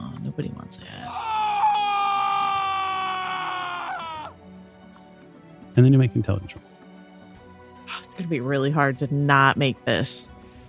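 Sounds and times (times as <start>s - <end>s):
speech: 0.4s - 1.3s, 5.8s - 6.8s, 8.2s - 10.4s
man screaming in pain: 1.1s - 4.4s.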